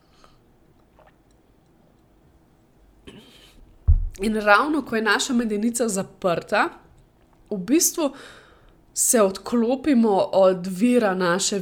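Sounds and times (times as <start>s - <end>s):
someone slurping a hot drink from a cup: 0.8s - 1.4s
dull low knock: 3.8s - 4.2s
speech: 4.2s - 6.8s, 7.5s - 8.4s, 9.0s - 11.5s.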